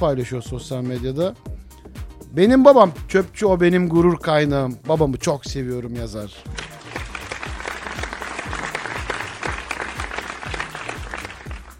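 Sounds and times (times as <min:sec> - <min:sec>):
speech: 0:00.0 - 0:01.5, 0:02.3 - 0:06.6
regular low thumping beat: 0:00.0 - 0:11.7
crowd applauding: 0:06.5 - 0:11.7.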